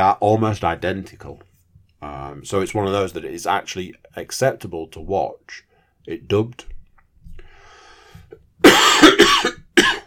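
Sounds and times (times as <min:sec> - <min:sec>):
speech: 0:00.0 - 0:06.8
raspy intake of breath: 0:07.4 - 0:08.3
loud harsh coughs: 0:08.6 - 0:10.0.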